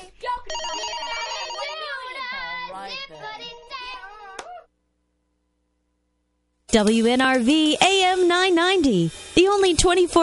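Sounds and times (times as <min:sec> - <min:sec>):
telephone ringing with a warbling electronic tone: 0:00.5 - 0:02.0
speech: 0:06.7 - 0:10.2.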